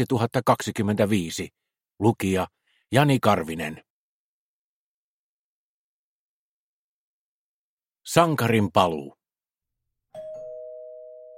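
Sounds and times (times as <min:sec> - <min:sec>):
speech: 0:00.0 - 0:03.9, 0:08.1 - 0:09.2
two-note doorbell chime of a felt slipper factory: 0:10.1 - 0:11.3.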